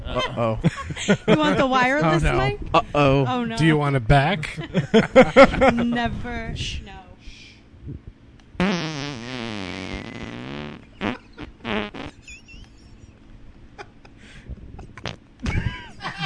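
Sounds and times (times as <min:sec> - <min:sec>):
laughter: 0:00.0 - 0:01.8, 0:04.4 - 0:06.1, 0:12.1 - 0:13.2, 0:15.4 - 0:16.2
speech: 0:00.2 - 0:07.0
man farting loudly with a wobbling buzzy pitch: 0:08.6 - 0:12.7, 0:14.9 - 0:15.7.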